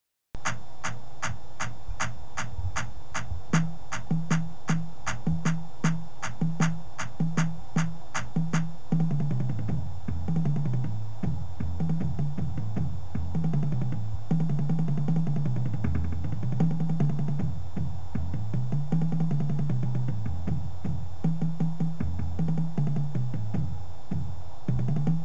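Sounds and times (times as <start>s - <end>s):
drumline: 0.5s - 25.2s
bass: 1.9s - 25.2s.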